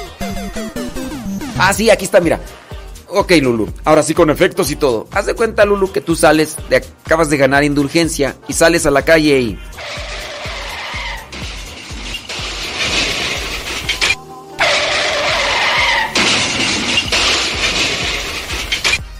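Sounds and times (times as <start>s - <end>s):
speech: 0.5s - 0.9s, 1.6s - 10.1s
car tires screeching in a skid sound effect: 9.8s - 19.0s
car crashing sound effect: 9.8s - 19.1s.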